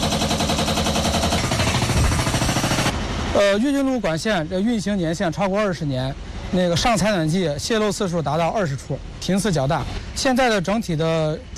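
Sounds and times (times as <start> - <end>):
jackhammer-like pounding at a heating pipe network site in Shijiazhuang China: 0.0 - 3.0
heavy machinery rumbling at a street intersection pipe laying site: 0.0 - 3.6
speech: 3.4 - 11.5.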